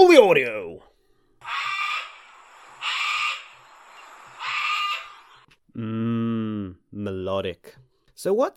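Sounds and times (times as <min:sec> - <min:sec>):
speech: 0:00.2 - 0:01.7, 0:05.8 - 0:08.5
wild parrots making natural calls: 0:01.4 - 0:05.5.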